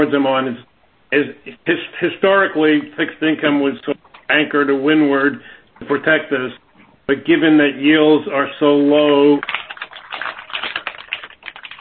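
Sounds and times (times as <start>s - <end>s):
speech: 0.0s - 9.6s
rapid typing on a computer keyboard: 9.4s - 11.7s.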